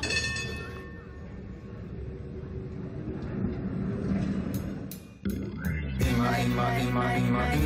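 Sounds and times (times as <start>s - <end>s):
tram bell ringing on a city street: 0.0s - 1.9s
city street traffic rumble: 0.0s - 7.6s
speech: 6.3s - 7.6s.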